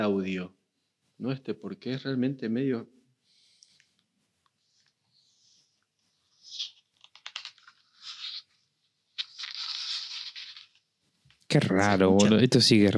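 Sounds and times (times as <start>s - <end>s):
speech: 0.0s - 0.6s, 1.2s - 3.0s, 11.5s - 12.9s
book pages being turned: 4.4s - 12.4s.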